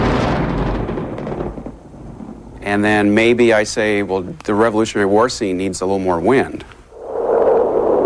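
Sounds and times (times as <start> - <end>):
thunder rumble sound effect: 0.0 - 3.8, 6.9 - 8.0
speech: 2.6 - 6.8.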